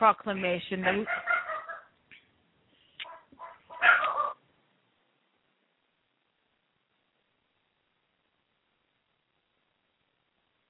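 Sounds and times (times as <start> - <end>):
speech: 0.0 - 1.3
dogs at home barking and yipping: 0.9 - 1.9, 3.0 - 4.4.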